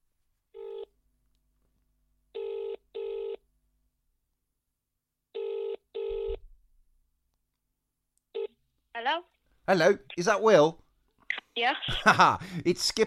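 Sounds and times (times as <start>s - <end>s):
outgoing telephone call buzzing ringback tone: 2.4s - 3.4s, 5.4s - 6.4s
speech: 9.0s - 10.8s, 11.6s - 13.0s.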